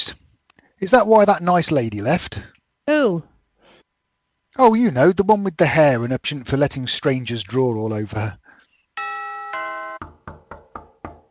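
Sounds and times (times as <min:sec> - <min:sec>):
speech: 0:00.8 - 0:03.3, 0:04.6 - 0:08.4
two-note doorbell chime: 0:09.0 - 0:10.2
firm knocks on a door: 0:10.0 - 0:11.2.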